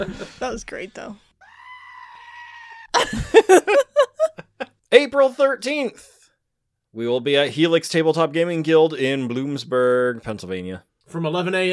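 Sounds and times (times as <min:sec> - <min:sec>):
speech: 0:00.0 - 0:01.3, 0:03.1 - 0:06.2, 0:06.9 - 0:11.7
goat screaming in harsh bleating bursts: 0:01.4 - 0:03.0
laughter: 0:03.0 - 0:04.8.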